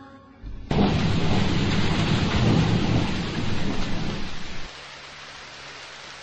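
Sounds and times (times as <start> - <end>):
low thundery rumble: 0.4 - 4.7
heavy rain shower: 0.5 - 6.2.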